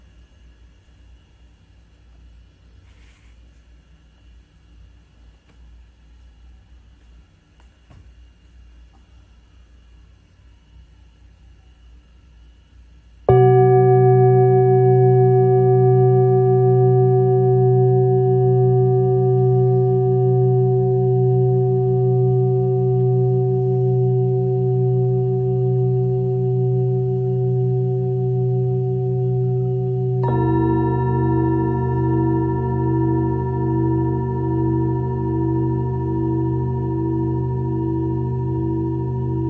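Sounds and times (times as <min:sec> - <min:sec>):
singing bowl ringing: 0:13.3 - 0:39.4.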